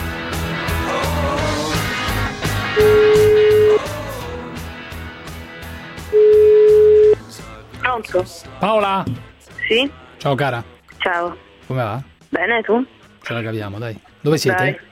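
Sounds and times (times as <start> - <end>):
music: 0.0 - 14.9
ringback tone of an outgoing telephone call: 2.8 - 3.8, 6.2 - 7.2
speech: 8.1 - 14.9.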